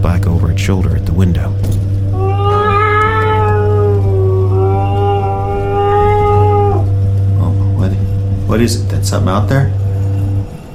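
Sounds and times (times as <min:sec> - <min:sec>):
steady low hum: 0:00.0 - 0:10.7
speech: 0:00.6 - 0:01.9, 0:08.5 - 0:09.8
cat meowing: 0:02.2 - 0:06.9.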